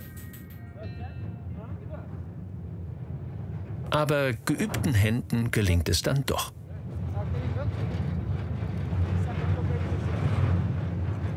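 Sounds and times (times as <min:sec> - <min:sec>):
strong wind buffeting a freight train between Nouadhibou and Zuerat: 0:01.2 - 0:05.8, 0:06.6 - 0:11.3
swaying freight wagons creaking and rattling: 0:01.2 - 0:11.3
speech: 0:03.9 - 0:06.6.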